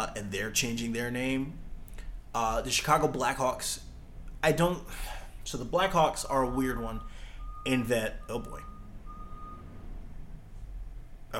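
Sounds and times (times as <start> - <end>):
speech: 0.0 - 1.6, 2.3 - 8.7
truck reversing beeper: 4.9 - 10.8.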